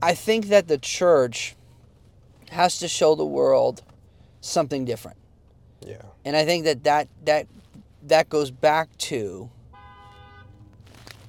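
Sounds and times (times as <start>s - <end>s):
speech: 0.0s - 1.6s, 2.5s - 5.2s, 5.8s - 9.6s
road traffic rumble heard from inside a car: 0.0s - 11.2s
street noise: 0.0s - 11.2s
car horn honking: 9.6s - 11.2s.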